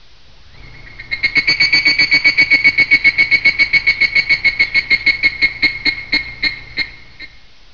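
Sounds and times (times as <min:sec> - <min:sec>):
plover calling: 0:00.5 - 0:07.4.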